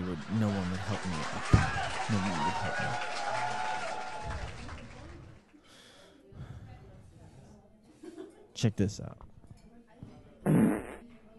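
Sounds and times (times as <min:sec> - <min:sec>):
speech: 0:00.2 - 0:03.5, 0:04.2 - 0:04.7, 0:08.6 - 0:09.3
loud buzzy fart into the microphone: 0:10.4 - 0:11.1.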